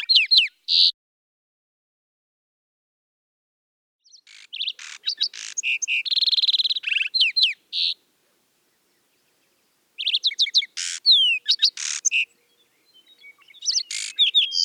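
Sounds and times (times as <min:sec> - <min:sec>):
Lark sparrow song with trills, buzzes and downslurred whistles: 0:00.0 - 0:00.9, 0:04.0 - 0:14.6.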